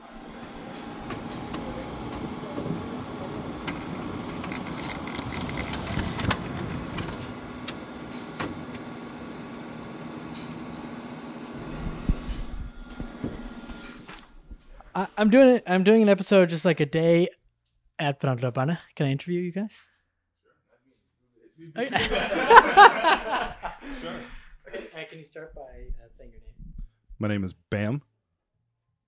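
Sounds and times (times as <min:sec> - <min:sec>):
printer clicking as it feeds and prints: 0:00.0 - 0:08.9
printer whirring and humming: 0:00.0 - 0:15.6
speech: 0:15.1 - 0:17.4, 0:18.0 - 0:19.9, 0:21.6 - 0:26.5, 0:27.2 - 0:28.1
laughter: 0:21.8 - 0:25.1.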